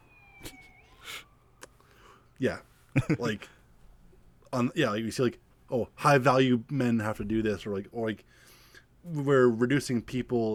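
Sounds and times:
bursts of noise: 0.0s - 1.8s
emergency vehicle siren wailing outside: 0.0s - 2.3s
speech: 2.4s - 3.6s, 4.5s - 8.4s, 9.0s - 10.5s.

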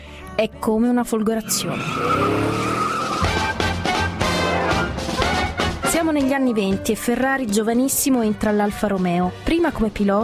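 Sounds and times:
speech: 0.4s - 3.3s, 6.0s - 10.2s
race car engines roaring at a motor race on the Bologna circuit: 1.4s - 5.8s
race car tires squealing: 1.4s - 5.9s.

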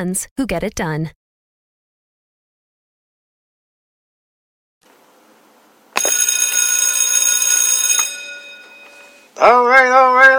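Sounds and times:
speech: 0.0s - 1.2s, 9.4s - 10.3s
single loud electric bell ringing: 6.0s - 10.3s.

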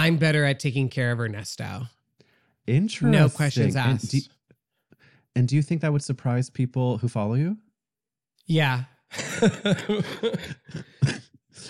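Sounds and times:
speech: 0.0s - 2.0s, 2.6s - 4.4s, 5.3s - 7.6s, 8.5s - 11.6s
two people laughing while getting over an illness: 9.1s - 11.6s
two people coughing while getting over an illness, one with laryngitis: 9.2s - 11.6s.

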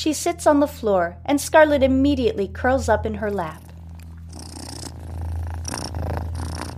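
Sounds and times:
speech: 0.0s - 3.6s
cat purring: 3.3s - 6.7s.

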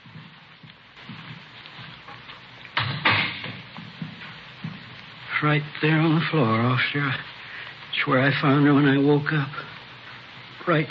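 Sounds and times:
steady hiss of rain-like noise: 0.0s - 10.8s
door opening and banging shut: 2.8s - 3.6s
speech: 5.4s - 7.3s, 8.0s - 9.6s, 10.7s - 10.8s.

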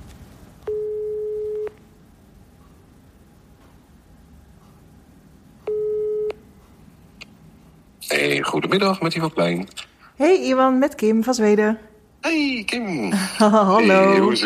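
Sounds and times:
faint telephone line hiss: 0.6s - 2.1s, 5.6s - 6.6s
telephone ringback tone on an outgoing call: 0.7s - 1.8s, 5.7s - 6.4s
speech: 8.4s - 14.4s.

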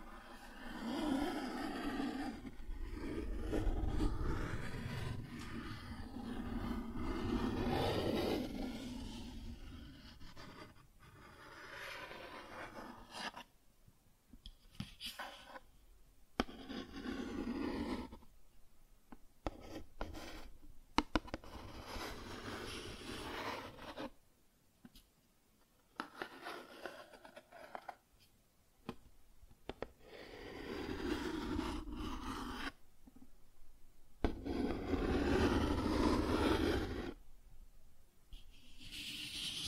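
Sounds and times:
cardboard being scratched and rubbed: 0.0s - 13.5s, 16.4s - 18.2s, 21.1s - 24.2s, 26.0s - 28.0s, 29.8s - 32.8s, 34.2s - 37.2s, 38.6s - 39.6s.

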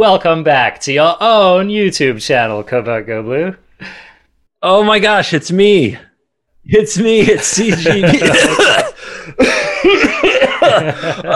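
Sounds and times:
speech: 0.0s - 10.0s, 10.8s - 11.3s
laughter: 7.0s - 11.3s
person coughing: 8.2s - 11.3s.

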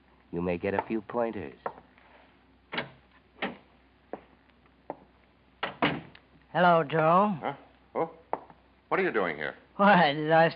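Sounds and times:
speech: 0.3s - 1.7s, 6.6s - 8.2s, 8.9s - 10.5s
office door latch and frame clunking and rattling: 5.6s - 6.1s.

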